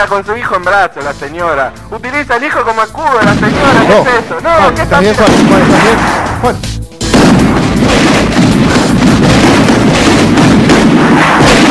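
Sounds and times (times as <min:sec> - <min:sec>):
speech: 0:00.0 - 0:06.8
firecracker bombs thrown from football stadium stands: 0:03.2 - 0:11.6.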